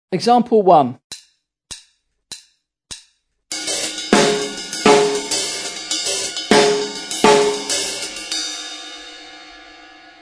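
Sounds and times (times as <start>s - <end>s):
drum set: 3.5s - 9.4s.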